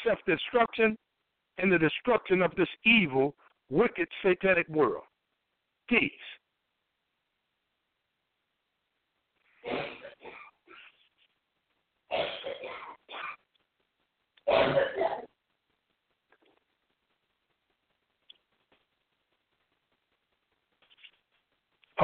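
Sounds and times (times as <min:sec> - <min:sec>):
speech: 0:00.0 - 0:05.1, 0:05.9 - 0:06.4, 0:14.5 - 0:15.3
person clearing throat: 0:09.6 - 0:10.9, 0:12.1 - 0:13.5, 0:14.5 - 0:15.4
person coughing: 0:09.6 - 0:10.9, 0:12.1 - 0:13.5, 0:14.5 - 0:15.4
faint clicks: 0:15.8 - 0:19.8.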